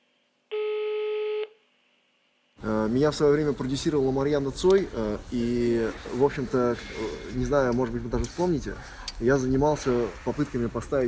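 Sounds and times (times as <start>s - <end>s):
telephone ringing tone as a phone call is placed: 0.5s - 1.6s
speech: 2.6s - 11.0s.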